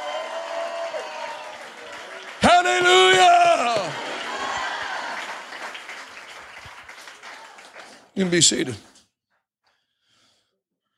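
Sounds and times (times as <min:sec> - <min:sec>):
audience voices shouting and cheering: 0:00.0 - 0:05.6, 0:07.1 - 0:08.8
audience clapping hands: 0:00.0 - 0:09.0
speech: 0:08.2 - 0:08.9.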